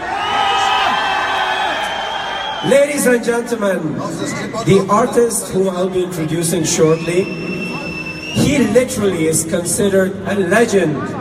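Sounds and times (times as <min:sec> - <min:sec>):
large crowd shouting the Punjabi cheer bale bale: 0:00.0 - 0:02.7
speech: 0:02.6 - 0:07.5, 0:08.4 - 0:11.1.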